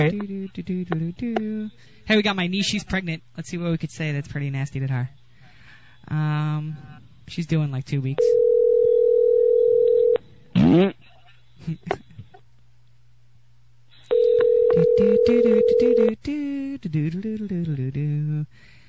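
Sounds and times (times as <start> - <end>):
speech: 0.0 - 5.2, 6.0 - 8.4, 10.7 - 12.1, 15.0 - 18.8
telephone ringback tone through the earpiece: 8.3 - 10.2, 14.1 - 16.1
person talking on phone: 14.2 - 16.2.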